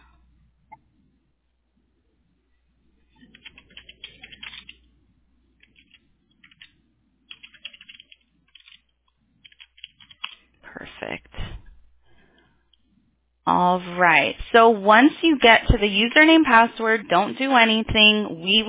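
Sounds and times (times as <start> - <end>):
low steady hum: 0.0 - 18.6
computer keyboard typing: 3.2 - 4.8, 5.6 - 10.4
speech: 11.0 - 11.4, 13.5 - 18.6.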